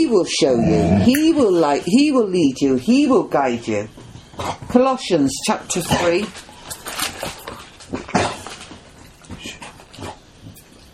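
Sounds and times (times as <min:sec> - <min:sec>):
speech: 0:00.0 - 0:06.5
dogs scratching their backs: 0:04.1 - 0:10.7.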